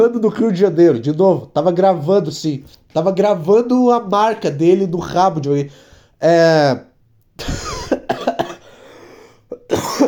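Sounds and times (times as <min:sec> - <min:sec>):
speech: 0:00.0 - 0:08.2
coughing: 0:07.4 - 0:10.0.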